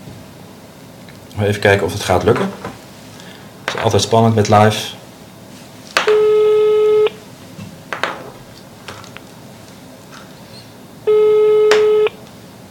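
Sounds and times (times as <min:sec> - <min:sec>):
speech: 0:01.4 - 0:02.8, 0:03.8 - 0:05.0
phone line ringback tone heard through the handset: 0:06.1 - 0:07.2, 0:11.1 - 0:12.2.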